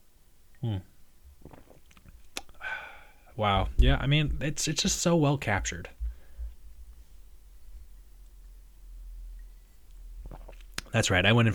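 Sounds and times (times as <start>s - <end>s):
speech: 0.6s - 0.9s, 3.4s - 6.0s, 11.0s - 11.5s
swallowing: 0.6s - 2.7s, 9.4s - 11.0s
sipping a sparkling hop water: 1.4s - 2.6s, 9.4s - 10.9s
wet mouth clicks: 1.4s - 2.6s, 9.9s - 10.9s
throaty gulp: 1.4s - 2.7s, 10.2s - 10.9s.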